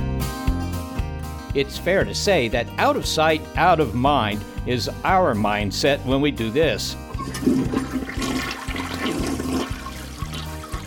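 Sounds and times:
speech: 1.6s - 8.1s
toilet flushing: 7.1s - 10.8s.

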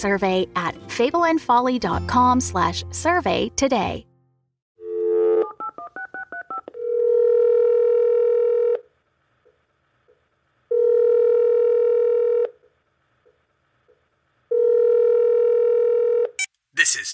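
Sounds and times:
speech: 0.0s - 4.1s
phone line ringing with long buzzing rings: 4.8s - 8.8s, 10.7s - 12.5s, 14.5s - 16.3s
phone number dialed in beeping tones: 5.1s - 8.8s.

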